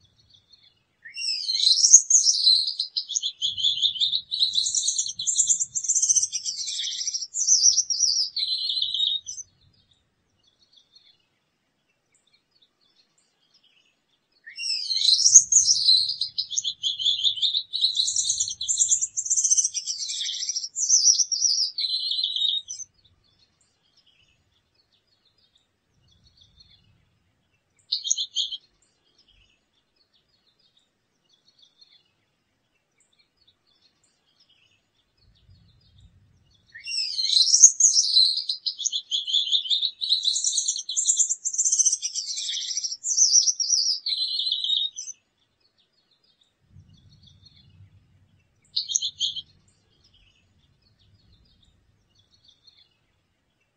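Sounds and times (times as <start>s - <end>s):
Gouldian finch: 1.1s - 9.5s, 14.5s - 22.9s, 36.6s - 45.1s, 48.6s - 51.6s.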